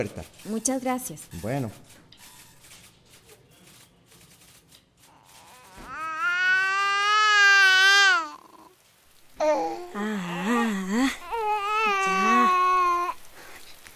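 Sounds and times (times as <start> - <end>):
speech: 0.0 - 2.0
baby crying: 5.1 - 8.7, 9.4 - 13.2.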